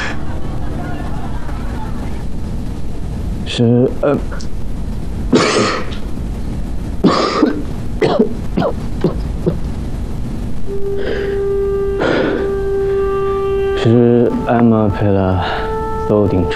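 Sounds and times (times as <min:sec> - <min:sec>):
laughter: 0:00.0 - 0:02.4
low hum: 0:00.0 - 0:16.5
person coughing hard in harsh hacking fits: 0:05.3 - 0:06.0, 0:07.0 - 0:09.6.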